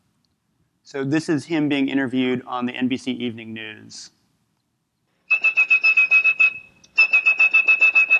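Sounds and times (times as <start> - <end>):
speech: 0.9 - 4.2
whistled telephone network dialing tones: 5.3 - 8.1.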